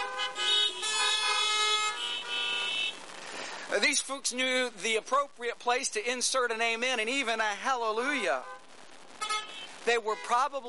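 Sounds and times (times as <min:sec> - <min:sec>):
car horns honking in long overlapping blasts: 0:00.0 - 0:03.0, 0:08.3 - 0:10.4
speech: 0:03.8 - 0:08.6, 0:09.8 - 0:10.6.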